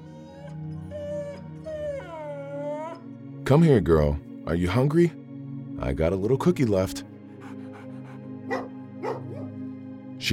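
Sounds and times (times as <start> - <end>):
female dog whimpering: 0.0 - 3.1, 7.4 - 9.5
speech: 3.5 - 5.2, 5.8 - 7.1.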